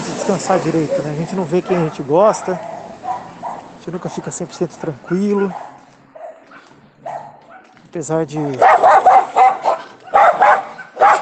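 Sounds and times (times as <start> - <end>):
speech: 0.3 - 2.7, 3.9 - 5.7, 7.9 - 8.9
several dogs barking in bursts: 0.5 - 11.2
dog whining yelp: 0.8 - 3.8, 5.0 - 7.8, 8.4 - 11.2.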